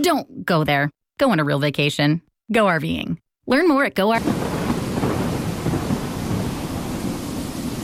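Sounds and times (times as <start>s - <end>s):
speech: 0.0s - 4.5s
continuous heavy rain in a thunderstorm: 4.2s - 7.8s
deep rolling thunder: 4.2s - 7.8s.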